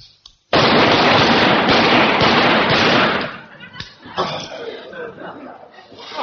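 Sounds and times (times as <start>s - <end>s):
rifle firing rapid fire on a firing range: 0.5s - 3.5s
laughter: 3.2s - 6.2s.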